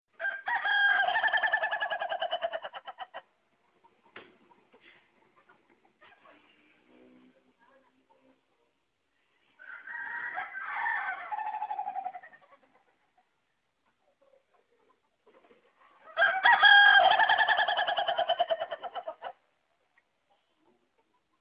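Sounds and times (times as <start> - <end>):
Ayam Ketawa chicken crowing: 0.1 - 3.2, 9.6 - 12.3, 16.1 - 19.3.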